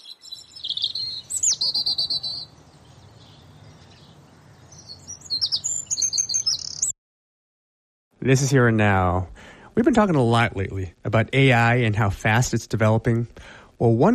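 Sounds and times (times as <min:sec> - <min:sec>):
several birds chirping and calling: 0:00.0 - 0:07.0
speech: 0:08.2 - 0:14.1.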